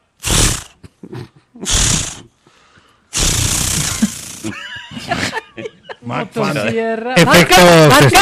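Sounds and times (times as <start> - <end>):
voice imitating a chainsaw engine trying to start: 0.2 - 0.7, 1.6 - 2.3, 3.2 - 4.5
laughter: 4.0 - 6.8, 7.4 - 8.1.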